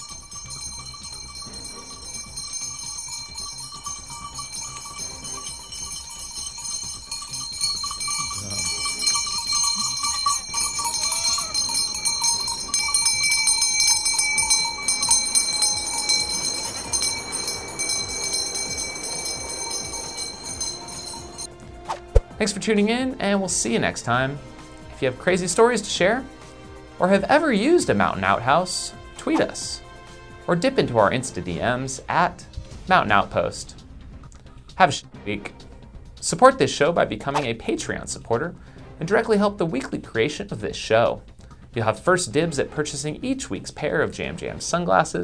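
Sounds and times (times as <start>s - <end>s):
goat bells clanking and jingling outdoors: 0.0s - 21.5s
speech: 22.4s - 26.4s, 27.0s - 29.8s, 30.5s - 33.8s, 34.8s - 35.6s, 36.2s - 45.2s.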